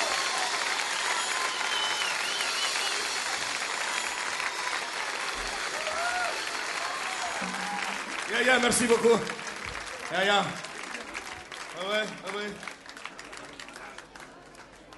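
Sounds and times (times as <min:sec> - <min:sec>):
crowd applauding: 0:00.0 - 0:14.9
whistles: 0:00.4 - 0:04.2
speech: 0:08.4 - 0:09.4, 0:10.1 - 0:10.7, 0:11.8 - 0:12.7.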